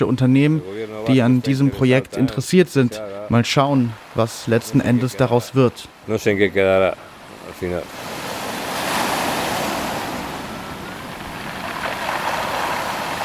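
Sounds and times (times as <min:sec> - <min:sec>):
speech: 0:00.0 - 0:08.1
steady surf washing against a shoreline: 0:03.2 - 0:13.2
wind buffeting the microphone: 0:07.1 - 0:13.2.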